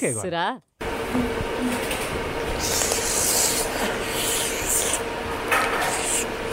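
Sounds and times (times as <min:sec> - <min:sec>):
speech: 0:00.0 - 0:03.0, 0:03.6 - 0:04.3
person slurping olive oil through the lips during a tasting: 0:02.5 - 0:06.4.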